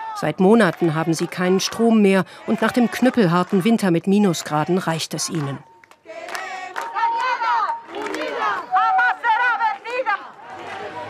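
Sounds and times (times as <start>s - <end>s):
crowd of protesters in Madrid chanting slogans: 0.0s - 11.0s
speech: 0.2s - 5.7s.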